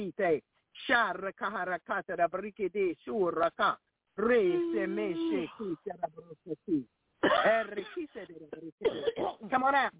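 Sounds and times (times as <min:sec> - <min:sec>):
speech: 0:00.0 - 0:09.9
person coughing rough throaty coughs: 0:07.2 - 0:08.1, 0:08.8 - 0:09.5.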